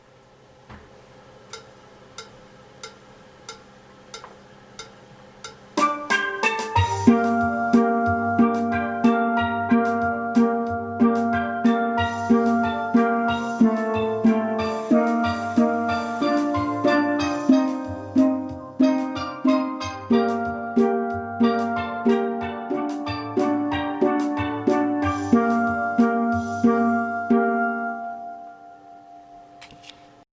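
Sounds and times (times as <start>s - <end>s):
musical accompaniment: 4.8s - 30.0s
alto theme: 5.8s - 29.7s.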